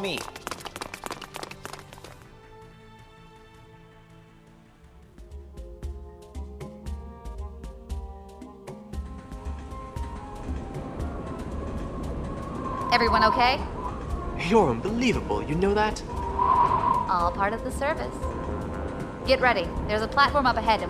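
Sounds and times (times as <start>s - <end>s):
speech: 0.0s - 0.4s, 12.9s - 13.7s, 14.4s - 16.2s, 17.1s - 18.4s, 19.3s - 20.8s
monorail train running along track: 9.3s - 20.8s.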